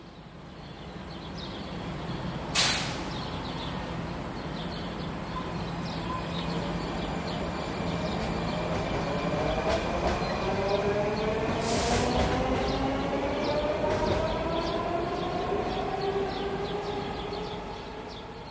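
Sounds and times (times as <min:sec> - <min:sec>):
Washington DC metro train pulling into a station: 0:00.1 - 0:18.4
metro train air-brake hiss: 0:02.6 - 0:03.1, 0:11.6 - 0:12.2.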